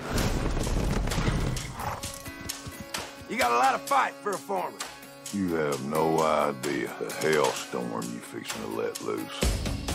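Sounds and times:
hooves of several horses with riders galloping: 0.2 - 4.0
horse whinny: 1.1 - 2.8
speech: 3.4 - 9.8.

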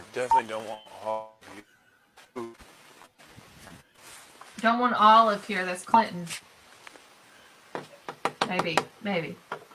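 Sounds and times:
speech: 0.2 - 1.7, 2.3 - 2.7, 4.6 - 6.5, 8.5 - 9.5
light quick raps on a door: 7.7 - 9.6.

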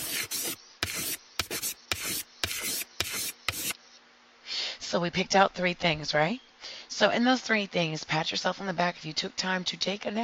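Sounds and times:
handwriting on paper: 0.0 - 3.8
speech: 4.9 - 10.2.

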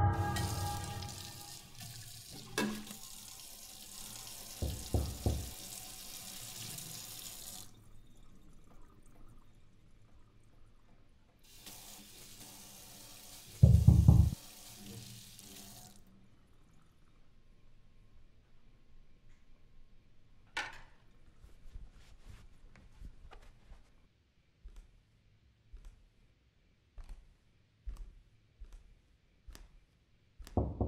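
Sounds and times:
shower water running: 0.1 - 9.3, 11.4 - 16.0.

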